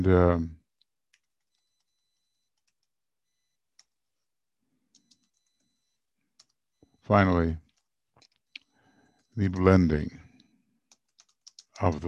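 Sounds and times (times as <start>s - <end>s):
speech: 0.0s - 0.6s, 7.1s - 7.6s, 9.4s - 10.2s, 11.8s - 12.0s
typing on a computer keyboard: 1.1s - 2.9s, 4.9s - 6.6s, 7.6s - 9.4s, 10.4s - 12.0s.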